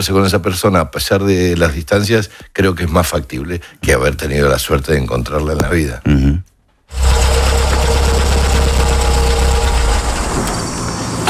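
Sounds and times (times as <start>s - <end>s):
speech: 0.0s - 7.2s
car engine starting and running heard from inside the cabin: 6.9s - 11.2s.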